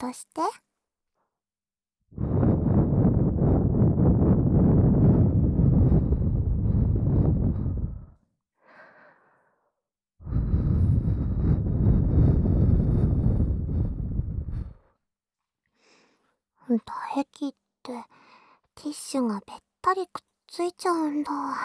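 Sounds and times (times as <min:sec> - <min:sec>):
speech: 0:00.0 - 0:00.7, 0:16.7 - 0:18.2, 0:18.8 - 0:21.6
breath blown into an ear to dry it: 0:02.1 - 0:08.2, 0:10.2 - 0:14.9.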